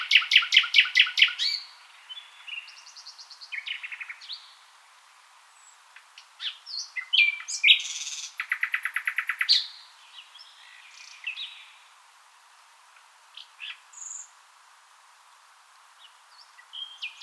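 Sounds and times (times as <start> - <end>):
common nightingale Luscinia megarhynchos singing: 0.0 - 4.7, 5.5 - 11.9, 13.0 - 14.4, 16.0 - 17.2.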